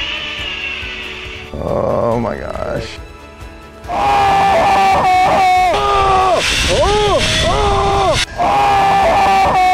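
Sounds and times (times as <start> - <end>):
speech: 1.5 - 3.1
man screaming in his normal voice: 3.9 - 9.7.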